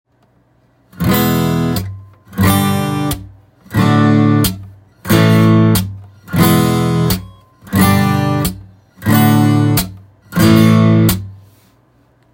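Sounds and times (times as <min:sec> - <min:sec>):
percussive string slaps on a guitar: 0:01.0 - 0:03.3, 0:04.2 - 0:11.3.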